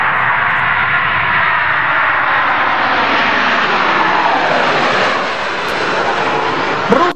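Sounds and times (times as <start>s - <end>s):
airplane engine roaring: 0.0s - 7.1s.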